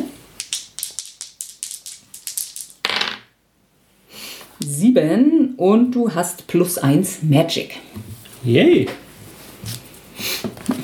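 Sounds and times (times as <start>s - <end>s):
dice clattering across a hard table during a tabletop role-playing game: 0.4s - 3.3s
speech: 4.7s - 9.0s.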